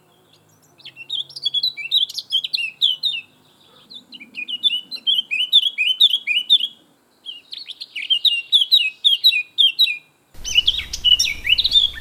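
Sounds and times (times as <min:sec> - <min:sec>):
Sylvia atricapilla blackcap territorial song: 0:00.0 - 0:11.9.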